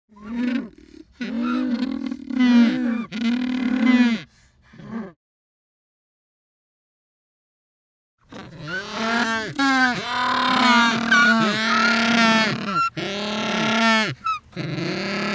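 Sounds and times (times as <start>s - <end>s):
Humboldt penguins calling: 0.2s - 4.3s, 8.4s - 15.3s.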